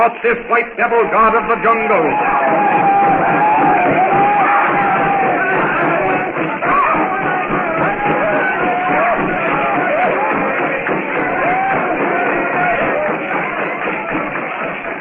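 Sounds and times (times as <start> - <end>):
speech: 0.0 - 4.2
large crowd yelling, whooping and bellowing while dancing around a fire: 0.0 - 14.9.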